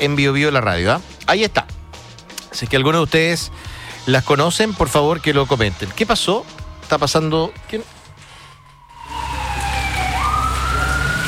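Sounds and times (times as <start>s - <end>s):
speech: 0.0s - 1.8s, 2.5s - 8.0s
police patrol car siren passing at speed: 4.5s - 6.3s, 8.4s - 11.2s
traffic rumble: 7.9s - 11.2s.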